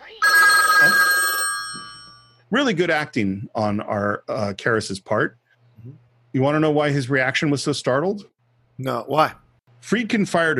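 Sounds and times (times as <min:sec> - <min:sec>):
telephone bell ringing with metallic trill: 0:00.2 - 0:02.4
speech: 0:02.5 - 0:10.5.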